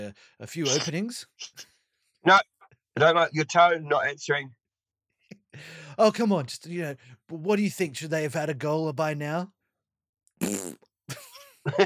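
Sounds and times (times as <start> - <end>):
speech: 0.0 - 4.6, 5.6 - 9.6, 10.4 - 11.8
fart noises blown with the mouth: 10.4 - 10.9.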